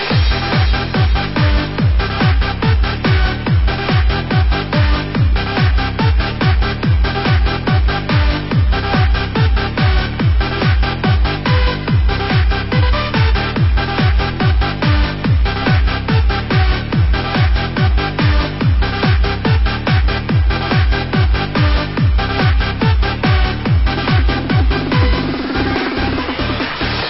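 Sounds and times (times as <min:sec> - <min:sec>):
bass guitar tuning up: 0:00.2 - 0:27.0.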